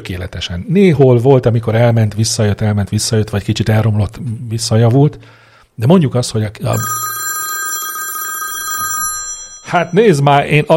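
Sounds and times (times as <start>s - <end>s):
speech: 0.0s - 7.2s, 9.7s - 10.7s
telephone ringing: 6.7s - 10.4s.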